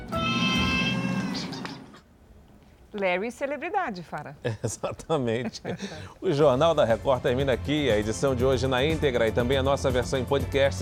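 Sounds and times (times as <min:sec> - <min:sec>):
cat meowing: 0:00.1 - 0:01.8
speech: 0:03.0 - 0:10.8
laughter: 0:04.5 - 0:06.3.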